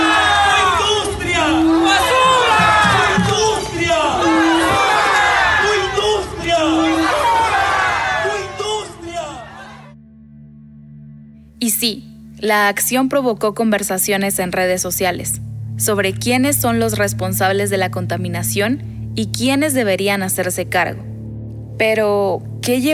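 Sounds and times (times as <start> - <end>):
crowd of protesters chanting a slogan through a megaphone: 0.0 - 10.0
speech: 11.8 - 21.1, 21.8 - 22.9.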